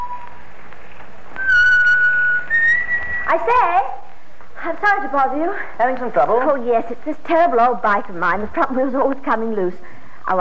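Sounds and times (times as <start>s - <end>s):
man whistling a short steady tune: 0.0s - 0.3s, 1.4s - 3.3s
speech: 3.3s - 4.0s, 4.6s - 10.4s.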